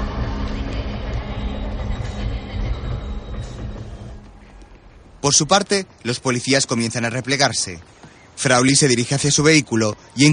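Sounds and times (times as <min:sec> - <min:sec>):
train pulling into a railway station platform: 0:00.0 - 0:04.5
speech: 0:05.2 - 0:10.3.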